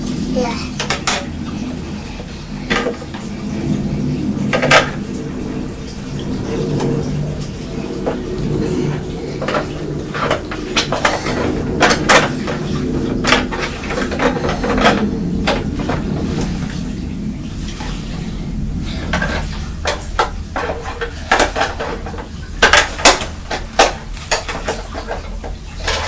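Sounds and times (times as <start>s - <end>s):
low steady hum: 0.0s - 26.0s
containers and dishes clinking, knocking and rattling in a fridge: 6.1s - 16.6s, 19.0s - 26.0s.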